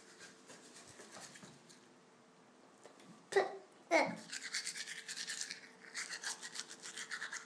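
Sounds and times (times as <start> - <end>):
toothbrush scrubbing teeth: 0.0 - 1.6, 4.2 - 7.4.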